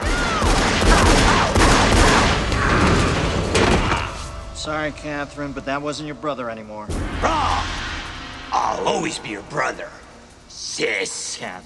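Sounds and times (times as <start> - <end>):
pistol gunfire in a dramatized scene: 0.0 - 2.5
blasts: 0.0 - 4.4, 6.9 - 10.3
speech: 4.7 - 7.8, 8.5 - 11.6.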